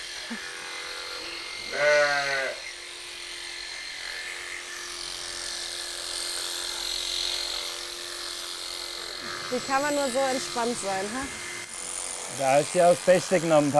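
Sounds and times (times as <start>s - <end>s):
speech: 0.3s - 0.5s, 9.5s - 11.4s, 12.3s - 13.7s
single sheep bleating: 1.6s - 2.7s.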